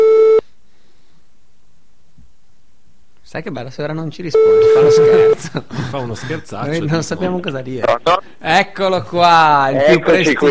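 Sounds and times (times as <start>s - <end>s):
electronic telephone ringing tone on an outgoing call: 0.0s - 0.4s, 4.4s - 5.4s
speech: 3.3s - 10.4s
laughter: 4.4s - 8.2s.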